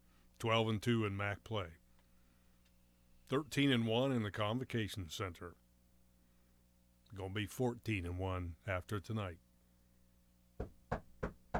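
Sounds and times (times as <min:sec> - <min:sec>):
speech: 0:00.4 - 0:01.8, 0:03.3 - 0:05.6, 0:07.1 - 0:09.4, 0:10.6 - 0:11.0
knocks on a wooden surface: 0:10.6 - 0:11.5.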